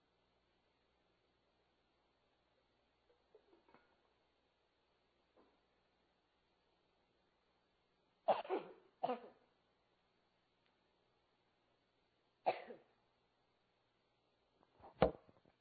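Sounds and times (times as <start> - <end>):
person clearing throat: 8.3 - 9.4, 12.5 - 12.9
person coughing: 8.3 - 9.4, 12.5 - 12.9.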